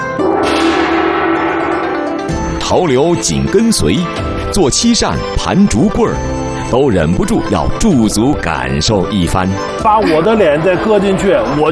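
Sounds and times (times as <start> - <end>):
large old brass gong being struck: 0.0 - 4.5
speech: 2.7 - 11.6.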